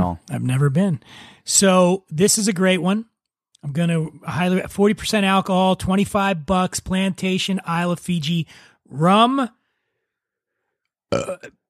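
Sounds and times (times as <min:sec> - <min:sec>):
speech: 0:00.0 - 0:09.6, 0:11.1 - 0:11.6
loud low rumbling burp: 0:11.1 - 0:11.6.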